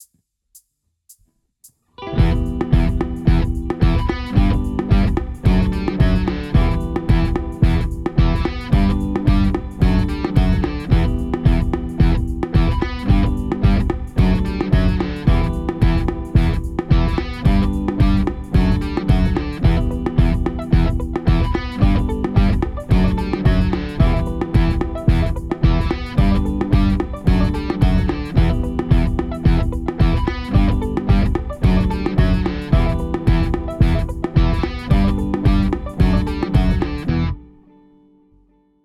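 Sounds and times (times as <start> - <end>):
musical riff: 2.1 - 37.6.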